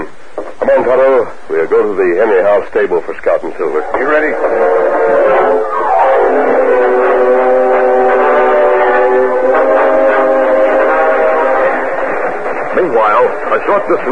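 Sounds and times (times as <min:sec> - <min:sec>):
speech: 0:00.7 - 0:07.0, 0:12.8 - 0:14.1
train horn blaring: 0:03.8 - 0:13.9.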